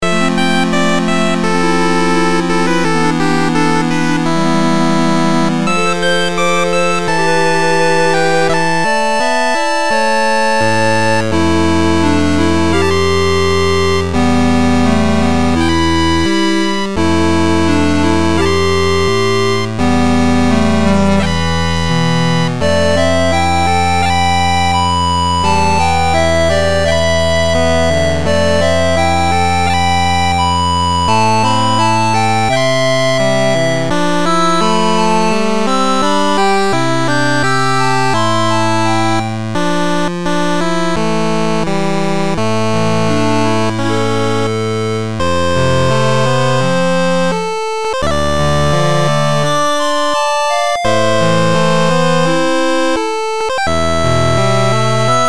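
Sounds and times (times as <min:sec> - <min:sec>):
mysterious eight-bit music loop with reverb: 0:00.0 - 0:55.2.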